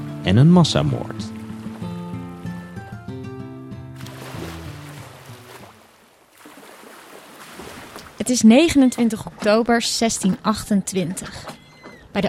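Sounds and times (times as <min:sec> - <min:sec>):
soft tonal music: 0:00.0 - 0:05.7
speech: 0:00.2 - 0:01.3, 0:08.3 - 0:11.6
water lapping against the wooden hull of a 46-metre ship at anchor off Texel: 0:00.8 - 0:03.0, 0:04.0 - 0:12.2.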